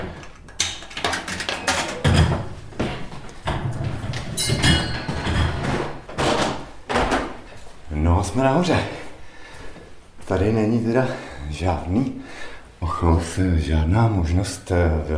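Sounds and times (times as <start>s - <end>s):
metallic clunks and rattling from a turnstile being pushed through: 0.0s - 7.1s
speech: 8.3s - 9.0s, 10.3s - 12.3s, 13.0s - 15.1s.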